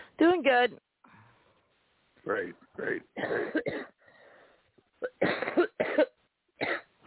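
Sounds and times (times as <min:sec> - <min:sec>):
speech: 0:00.2 - 0:00.9, 0:02.2 - 0:04.0
person coughing in short harsh bursts: 0:03.2 - 0:04.0, 0:05.0 - 0:06.9.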